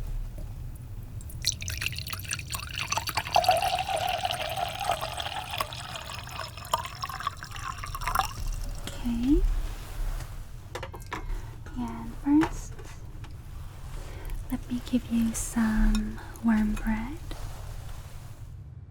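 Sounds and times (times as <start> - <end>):
water pouring into a glass: 1.1 - 9.8, 11.8 - 18.4.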